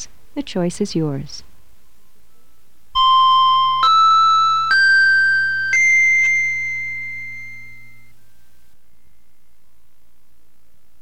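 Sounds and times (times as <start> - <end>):
speech: 0.0 - 1.5
faint low hum: 0.0 - 11.0
bright chime tones opening a hypnosis session: 3.0 - 8.2.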